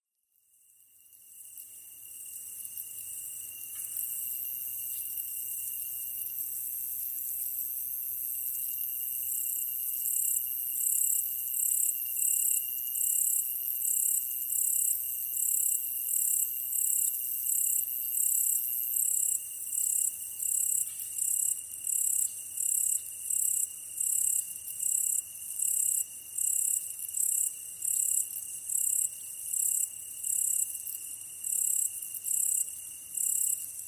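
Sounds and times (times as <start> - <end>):
katydid: 0.6 - 33.8.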